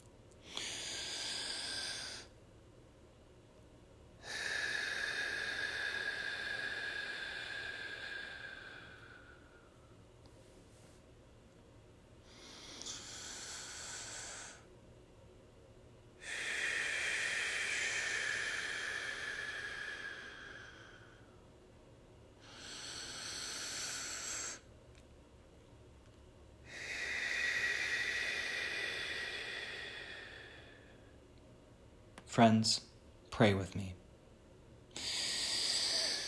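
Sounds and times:
deep slow breathing before a prayer: 0:00.0 - 0:02.4, 0:04.2 - 0:11.1, 0:12.2 - 0:14.8, 0:16.2 - 0:21.5, 0:22.4 - 0:25.0, 0:26.6 - 0:31.3, 0:34.9 - 0:36.2
speech: 0:32.4 - 0:34.0.

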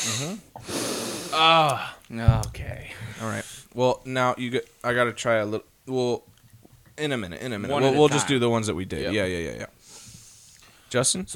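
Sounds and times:
breathy sniff of beer into a microphone: 0:00.0 - 0:01.4, 0:09.8 - 0:10.9
speech: 0:00.0 - 0:06.3, 0:07.0 - 0:09.7, 0:10.9 - 0:11.3.

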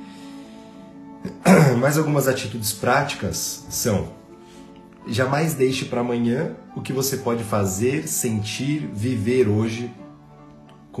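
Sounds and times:
speech: 0:01.2 - 0:04.2, 0:05.0 - 0:10.0
single short harsh cough: 0:01.3 - 0:01.8.

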